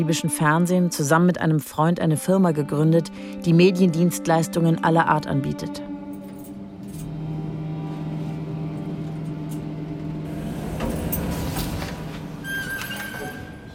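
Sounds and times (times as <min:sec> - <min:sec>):
speech: 0:00.0 - 0:05.9
car engine hum while driving: 0:06.8 - 0:12.5
road noise: 0:07.1 - 0:12.9.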